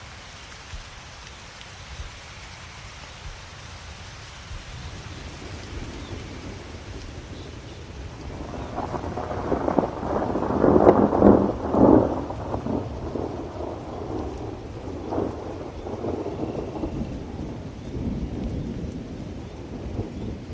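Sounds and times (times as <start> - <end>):
soft rain pattering on a window: 0.0 - 20.5
roll of thunder: 4.5 - 20.5.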